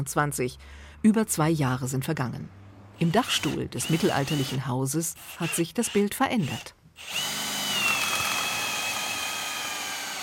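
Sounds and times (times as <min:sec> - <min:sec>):
speech: 0:00.0 - 0:07.4
power drill drilling into a wooden beam: 0:03.0 - 0:04.6, 0:05.2 - 0:10.2.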